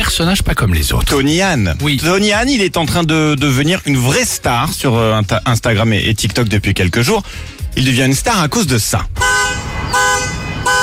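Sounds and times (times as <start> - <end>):
speech: 0.1 - 9.3
car alarm honking: 9.2 - 10.8.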